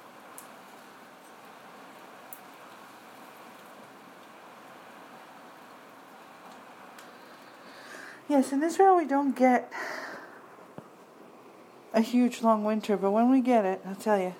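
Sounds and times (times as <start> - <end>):
hail pelting down in Israel in winter: 0.0 - 9.0
speech: 8.3 - 10.0, 12.0 - 14.3.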